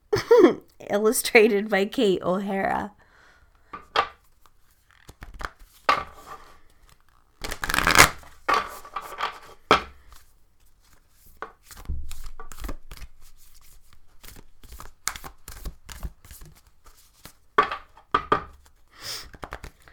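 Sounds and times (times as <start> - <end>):
speech: 0.9 - 3.0
oracle cards being shuffled for a card pull: 4.2 - 19.9.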